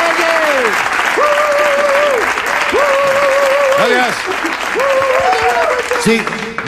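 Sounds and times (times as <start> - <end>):
crowd applauding: 0.0 - 6.6
speech: 6.0 - 6.6.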